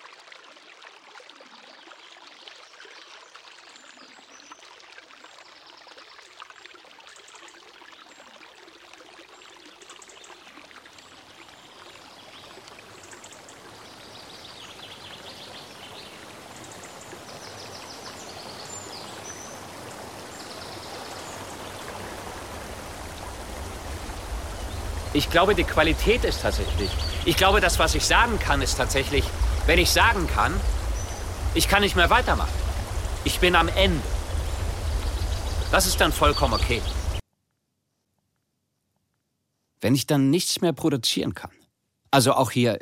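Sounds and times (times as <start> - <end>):
river water rushing: 12.5 - 37.2
speech: 25.2 - 30.7, 31.6 - 32.6, 33.2 - 34.1, 35.7 - 37.0, 39.9 - 42.7.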